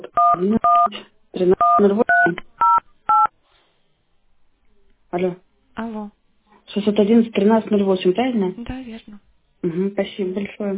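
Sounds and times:
speech: 0:00.4 - 0:02.4, 0:05.2 - 0:06.2, 0:06.8 - 0:10.7
touch-tone telephone keypad beeps dialing a number: 0:01.6 - 0:03.3.

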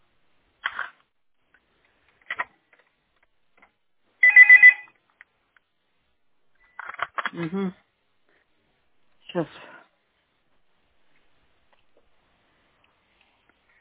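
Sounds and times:
doorbell ringing in short electronic bursts: 0:04.2 - 0:04.9
speech: 0:07.4 - 0:07.8, 0:09.4 - 0:09.8.

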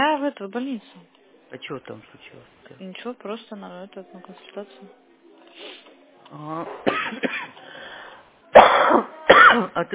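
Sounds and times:
speech: 0:00.3 - 0:05.0, 0:05.6 - 0:07.4, 0:08.9 - 0:09.9
young child coughing: 0:06.8 - 0:07.6, 0:08.5 - 0:09.7.

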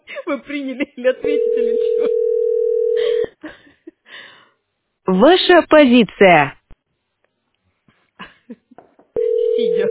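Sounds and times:
speech: 0:00.3 - 0:02.3, 0:05.1 - 0:06.6
telephone beep on an unanswered call: 0:01.2 - 0:03.0, 0:09.2 - 0:09.8.

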